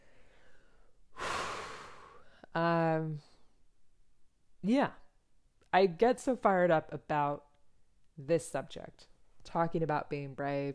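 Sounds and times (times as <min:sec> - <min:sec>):
single deep breath in and out with voiced exhale: 0:00.0 - 0:02.5
speech: 0:04.6 - 0:05.0, 0:05.7 - 0:07.5, 0:08.2 - 0:10.7.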